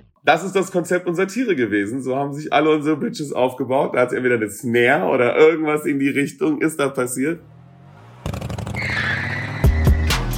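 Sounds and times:
speech: 0.2s - 7.5s
motorcycle engine revving as a sound effect in a music track: 7.4s - 10.3s
dense electronic music track: 9.6s - 10.3s.

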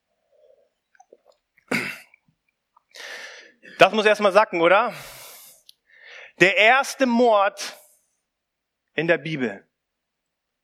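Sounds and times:
person sipping a drink: 0.2s - 1.8s
person breathing out after a sip: 3.0s - 3.6s
speech: 3.8s - 5.1s, 6.4s - 7.8s, 9.0s - 9.7s.

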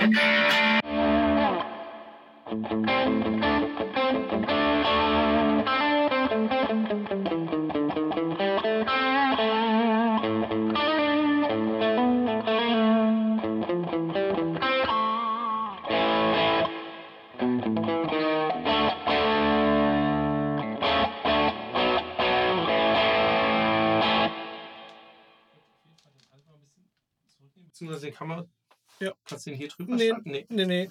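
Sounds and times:
electric guitar through boost and distortion pedals with heavy overdrive: 0.0s - 25.4s
speech: 29.4s - 30.8s.

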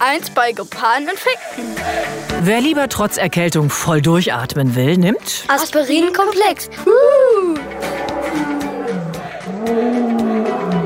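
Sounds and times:
speech: 0.1s - 8.6s
lion roaring: 7.6s - 10.8s.

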